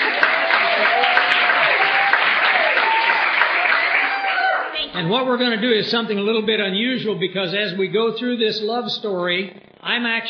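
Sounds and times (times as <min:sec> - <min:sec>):
audience applause: 0:00.0 - 0:04.9
speech: 0:05.0 - 0:10.2.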